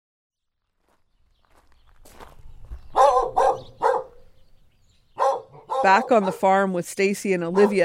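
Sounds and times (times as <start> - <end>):
faint footsteps: 0.6 - 4.1
dog barking at microphone: 2.9 - 4.3, 5.2 - 6.5, 7.5 - 7.8
speech: 5.8 - 7.8.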